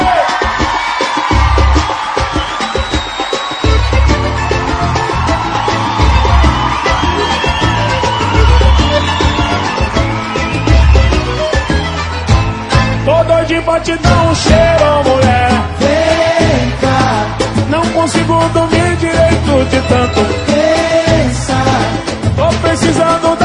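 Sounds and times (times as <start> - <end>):
scattered whoops from a crowd: 0.0 - 12.4
large crowd shouting and cheering: 0.0 - 23.4
speech: 13.8 - 14.6.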